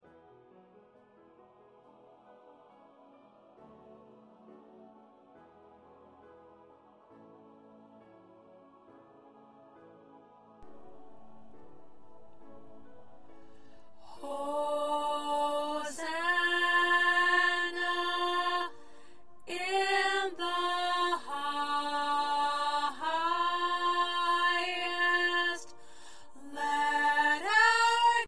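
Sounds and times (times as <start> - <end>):
choir alto voices: 13.6 - 28.2.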